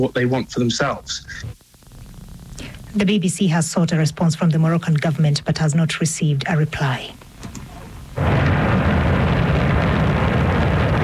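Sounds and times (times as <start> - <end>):
speech: 0.0 - 1.6, 2.9 - 7.2
Shenzhou 23 rocket blasting off at the Jinghu Quan Launch Center in Inner Mongolia: 8.2 - 11.0.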